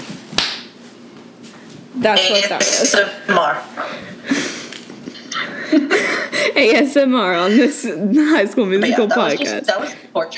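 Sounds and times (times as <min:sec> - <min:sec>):
quiet hum: 0:00.0 - 0:10.3
hand slapping own head: 0:00.3 - 0:00.8
speech: 0:02.0 - 0:04.4, 0:05.7 - 0:10.3
laughter: 0:03.3 - 0:10.3.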